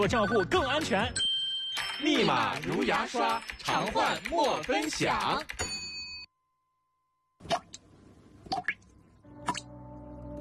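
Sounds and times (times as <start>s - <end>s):
speech: 0.0s - 1.3s, 2.0s - 5.7s
water dripping from a faucet: 7.4s - 9.7s.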